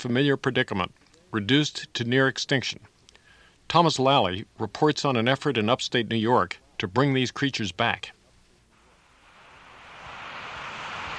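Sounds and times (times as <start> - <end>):
speech: 0.0 - 2.9, 3.7 - 8.2
waterfall dropping about 90 feet into a pool: 8.9 - 11.1.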